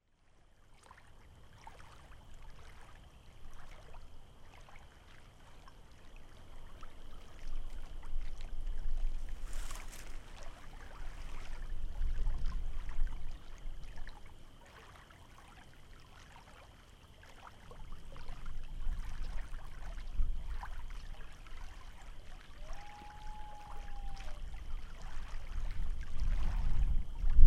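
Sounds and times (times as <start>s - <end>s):
lake waves in Wisconsin: 0.2s - 27.4s
distant loon in Wisconsin: 22.4s - 25.6s.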